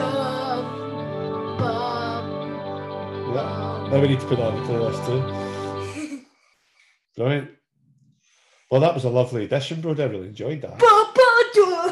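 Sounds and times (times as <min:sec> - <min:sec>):
rock song intro with dense sustained chords: 0:00.0 - 0:05.9
speech: 0:03.3 - 0:05.6, 0:07.2 - 0:07.6, 0:08.7 - 0:11.1.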